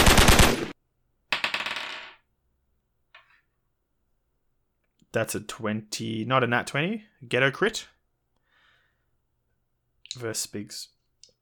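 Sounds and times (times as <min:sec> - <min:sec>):
submachine gun fire sound effect: 0:00.0 - 0:00.8
speech: 0:05.2 - 0:08.0, 0:10.2 - 0:11.0.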